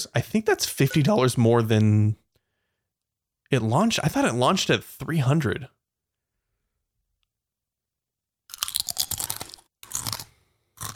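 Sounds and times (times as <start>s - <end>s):
speech: 0.0s - 2.2s, 3.5s - 5.8s
crisp snack being chewed: 8.5s - 10.9s.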